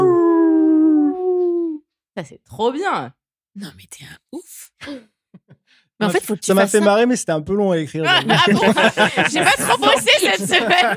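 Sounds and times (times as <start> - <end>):
person imitating wolf howl: 0.0 - 1.8
speech: 2.2 - 10.9
laughter: 8.0 - 10.9.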